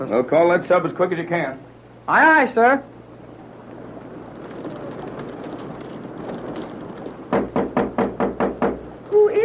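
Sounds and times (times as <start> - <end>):
speech: 0.0 - 3.0
low rumble and hiss: 0.0 - 9.4
knocking on a door: 7.0 - 8.9.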